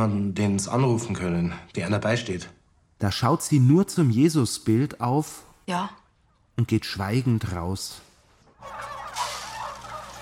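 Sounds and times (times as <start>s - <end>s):
speech: 0.0s - 6.0s, 6.6s - 9.0s
hundreds of turkeys gobbling in a fattening barn: 8.4s - 10.2s.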